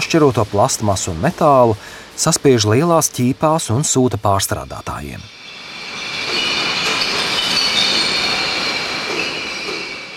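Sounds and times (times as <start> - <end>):
speech: 0.1 - 5.4
single-use glass bottles clattering at a sorting facility: 5.8 - 10.1.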